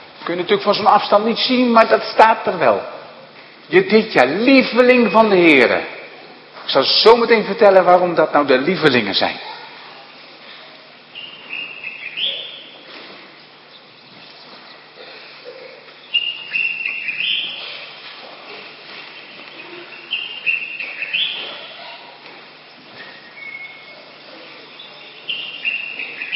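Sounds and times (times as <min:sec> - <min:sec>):
soft steady outdoor noise: 0:00.0 - 0:26.3
speech: 0:00.3 - 0:03.0, 0:03.7 - 0:06.0, 0:06.7 - 0:09.6
dawn chorus of many birds singing and chirping: 0:11.0 - 0:26.3.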